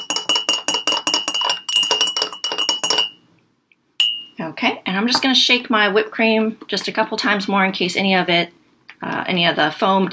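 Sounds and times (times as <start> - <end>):
spoon clinking against a glass while stirring sugar into coffee: 0.0 - 3.2, 4.0 - 4.4
speech: 4.5 - 10.1.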